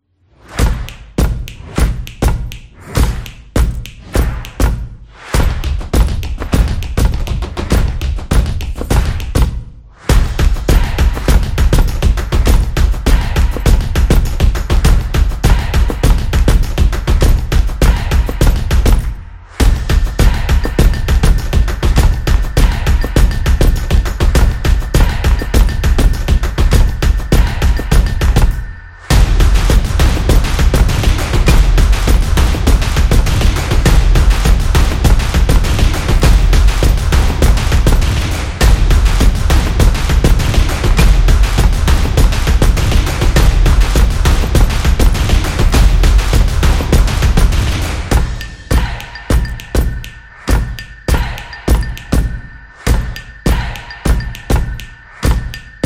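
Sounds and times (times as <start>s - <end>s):
upbeat explainer music: 0.5s - 55.8s.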